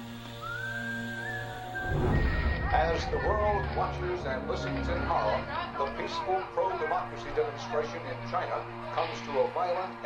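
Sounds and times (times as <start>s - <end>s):
thin eerie high-pitched whistle: 0.0s - 5.9s
low droning hum: 1.5s - 6.9s
noisy rumble: 1.7s - 6.6s
speech: 1.9s - 10.0s.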